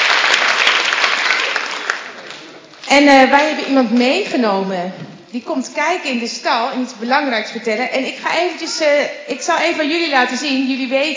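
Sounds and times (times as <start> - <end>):
crowd at a gathering in Bunschoten-Spakenburg applauding: 0.0 - 2.6
speech: 2.9 - 11.1.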